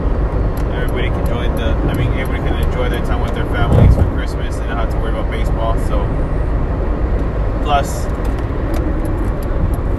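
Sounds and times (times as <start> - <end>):
truck rumbling along the road: 0.0 - 9.9
speech: 7.6 - 8.2.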